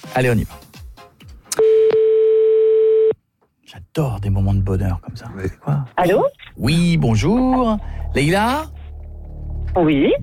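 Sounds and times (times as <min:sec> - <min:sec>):
speech: 0:00.1 - 0:00.6, 0:04.0 - 0:08.8, 0:09.8 - 0:10.2
steady single-pitch telephone dialing tone: 0:01.6 - 0:03.2.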